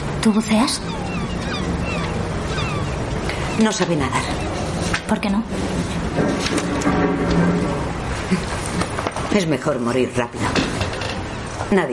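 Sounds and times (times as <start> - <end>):
rushing waves on a boat deck: 0.0 - 8.6
steady wind on a boat deck: 0.0 - 11.9
speech: 0.2 - 1.2, 3.6 - 4.3, 5.1 - 8.6, 9.3 - 10.6, 11.7 - 11.9.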